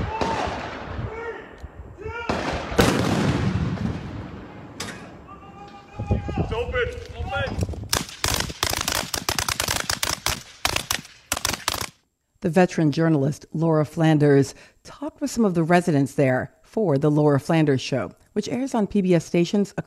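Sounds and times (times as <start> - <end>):
heavy artillery booms from a military training complex: 0.0 - 1.4, 2.2 - 5.3
rapid barrage of sharp loud blasts: 2.2 - 4.8, 7.8 - 12.0
speech: 6.1 - 7.8, 12.4 - 19.8.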